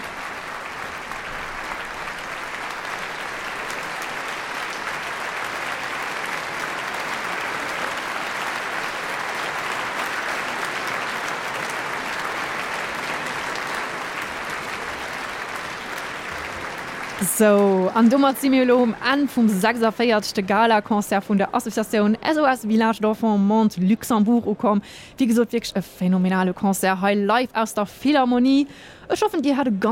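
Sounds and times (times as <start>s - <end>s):
concert audience applause at a charity gala concert in the Philharmonie, Luxembourg: 0.0s - 22.0s
speech: 17.2s - 29.8s.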